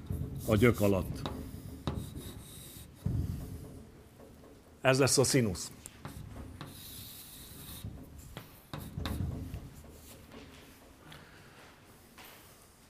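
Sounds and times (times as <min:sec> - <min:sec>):
scratchy strokes of an equation being written out during a maths explanation: 0:00.0 - 0:03.7, 0:05.8 - 0:10.6
speech: 0:00.5 - 0:01.3, 0:04.8 - 0:05.8.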